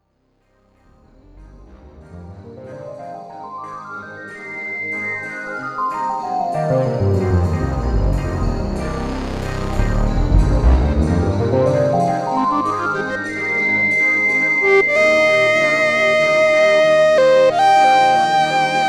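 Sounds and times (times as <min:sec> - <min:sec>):
SUPER6 synthesizer solo: 0:06.6 - 0:18.8.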